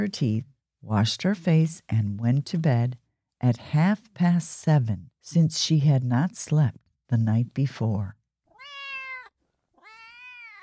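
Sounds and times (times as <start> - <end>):
speech: 0.0 - 8.2
cat meowing: 8.5 - 10.6.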